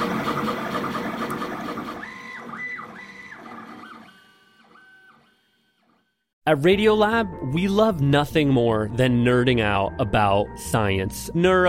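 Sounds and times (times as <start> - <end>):
3D printer running: 0.0 - 6.1
speech: 6.5 - 11.6.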